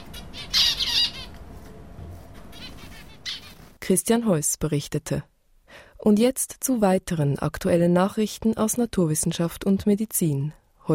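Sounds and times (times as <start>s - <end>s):
zebra finches chirping: 0.0s - 1.4s, 2.5s - 3.6s
speech: 3.9s - 5.3s, 6.0s - 10.9s.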